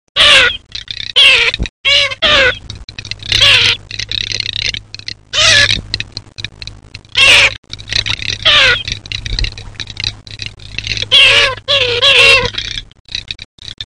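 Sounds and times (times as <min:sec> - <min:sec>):
garganey duck: 0:00.2 - 0:06.1, 0:07.1 - 0:10.1, 0:10.9 - 0:12.8.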